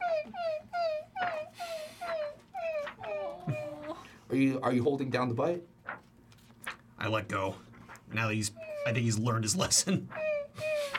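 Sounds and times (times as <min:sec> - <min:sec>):
voice imitating a dog whimpering: 0:00.0 - 0:04.2, 0:08.5 - 0:10.9
speech: 0:04.3 - 0:05.8, 0:07.0 - 0:10.2.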